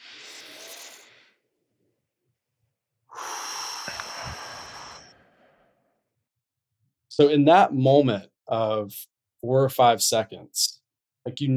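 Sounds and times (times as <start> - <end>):
person taking a deep breath during a relaxation exercise: 0.0 - 1.4, 3.1 - 6.0
speech: 7.2 - 11.5.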